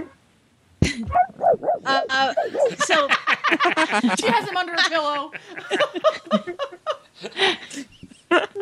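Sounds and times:
dog barking: 1.1s - 2.8s
speech: 1.8s - 8.4s
laughter: 2.3s - 8.5s.

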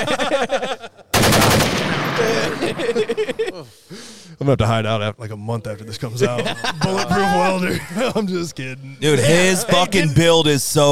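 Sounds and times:
laughter: 0.0s - 1.1s, 2.0s - 4.1s, 6.0s - 10.8s
dense burst of rapid gunfire sound effect: 1.1s - 3.2s
speech: 2.7s - 10.8s.

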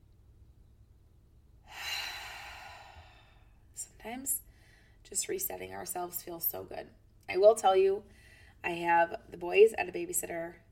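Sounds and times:
person breathing in deeply: 1.7s - 3.6s
speech: 4.0s - 4.4s, 5.1s - 10.6s.

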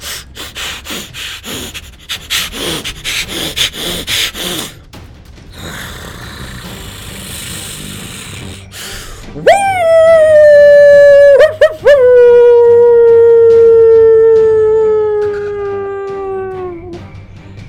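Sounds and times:
steady rushing hiss of noise: 0.0s - 4.9s, 5.5s - 9.4s
wolf howling: 9.4s - 17.0s.

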